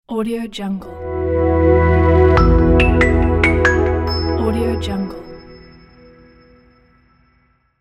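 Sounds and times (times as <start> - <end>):
plucked logo jingle: 1.0 - 6.4.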